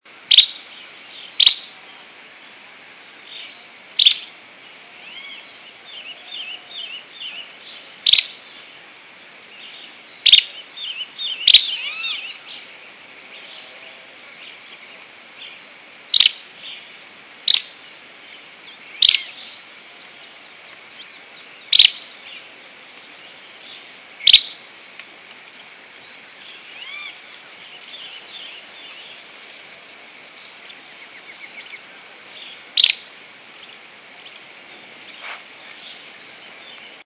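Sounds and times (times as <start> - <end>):
Tawny-crowned Pygmy-tyrant Euscarthmus meloryphus singing: 0.3 - 2.6, 3.2 - 37.0.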